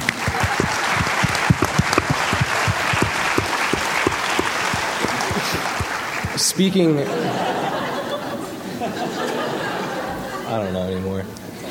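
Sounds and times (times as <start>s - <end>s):
crowd clapping: 0.0s - 6.6s
laughter: 0.1s - 11.6s
speech: 6.6s - 7.6s, 10.5s - 11.4s.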